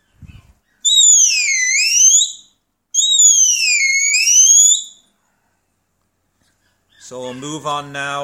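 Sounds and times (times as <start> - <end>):
high-pitched herding whistle commanding a working dog: 0.8 - 5.0
speech: 7.1 - 8.2.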